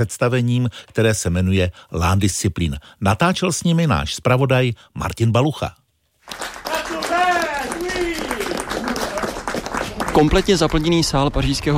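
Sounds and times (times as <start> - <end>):
speech: 0.0 - 6.5, 10.2 - 11.7
theatre audience applauding after a performance in a Paris studio: 6.2 - 11.3
audience shouting bravo: 6.7 - 9.3.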